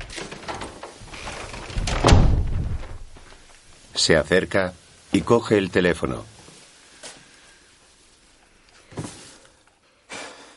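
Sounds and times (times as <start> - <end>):
door being shut with a heavy thud: 0.0 - 3.3
speech: 4.0 - 6.3.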